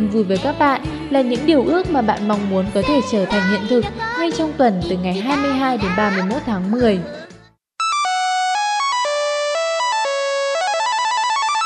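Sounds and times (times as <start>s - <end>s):
speech: 0.1s - 7.2s
phone text message notification ringtone: 7.8s - 11.6s.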